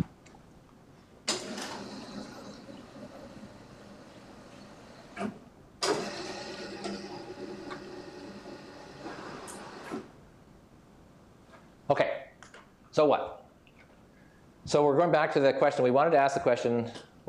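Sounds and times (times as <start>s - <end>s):
clunk of a board being raised: 1.3s - 3.2s, 5.0s - 7.9s
mechanical whirring of a board being raised: 1.3s - 10.1s
speech: 13.0s - 13.4s, 14.7s - 17.2s.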